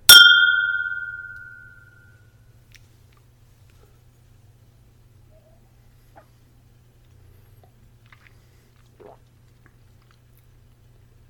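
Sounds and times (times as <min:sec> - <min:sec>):
glasses clinking in a toast with Irish whiskey: 0:00.1 - 0:02.0.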